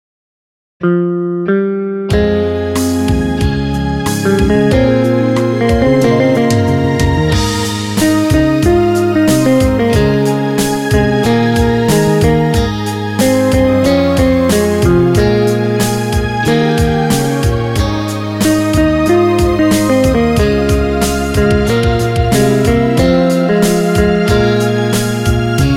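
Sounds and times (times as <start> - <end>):
alto in A-flat major: 0.8 - 25.7.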